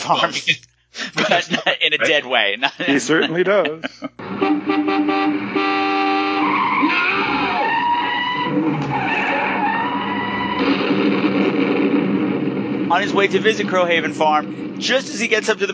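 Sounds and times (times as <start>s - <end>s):
laughter: 0.0s - 4.2s
speech: 0.1s - 5.7s, 12.9s - 15.7s
car horn blaring: 4.2s - 8.6s
tires screeching: 4.2s - 15.7s
car swerving and crashing into a tree: 6.4s - 15.7s.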